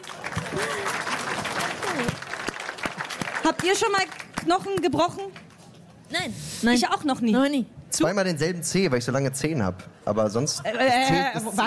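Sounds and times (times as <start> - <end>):
applause from a small group: 0.0 - 5.6
speech: 3.5 - 5.4, 6.1 - 11.6.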